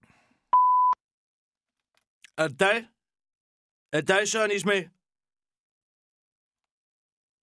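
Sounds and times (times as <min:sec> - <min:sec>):
answering machine beep on a telephone: 0:00.6 - 0:01.0
speech: 0:02.4 - 0:03.0, 0:03.9 - 0:05.0.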